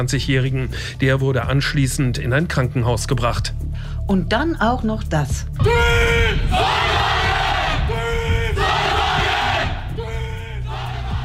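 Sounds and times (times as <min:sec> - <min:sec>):
speech: 0:00.0 - 0:06.9
student solar car racing team shouting battle cry in unison: 0:05.6 - 0:11.2.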